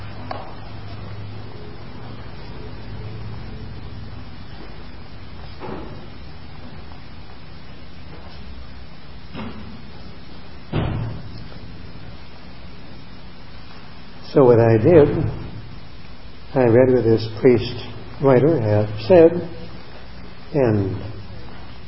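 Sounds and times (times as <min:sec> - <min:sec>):
door shutting with a dull thump: 0:05.5 - 0:06.1, 0:09.3 - 0:09.8, 0:10.7 - 0:11.5
speech: 0:14.3 - 0:15.4, 0:16.6 - 0:19.6, 0:20.5 - 0:21.1.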